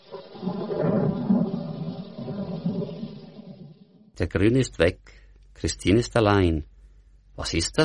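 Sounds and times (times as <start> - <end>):
thunder rumbling: 0.0 - 4.2
speech: 4.2 - 6.7, 7.4 - 7.8.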